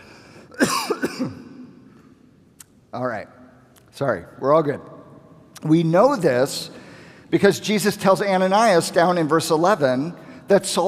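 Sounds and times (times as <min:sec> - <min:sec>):
person coughing: 0:00.5 - 0:01.6
speech: 0:02.9 - 0:03.4, 0:04.0 - 0:04.9, 0:05.6 - 0:10.8.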